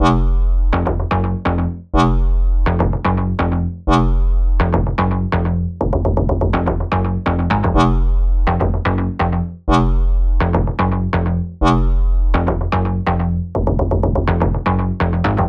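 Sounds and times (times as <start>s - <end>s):
dirty bass in F minor: 0.0s - 15.4s.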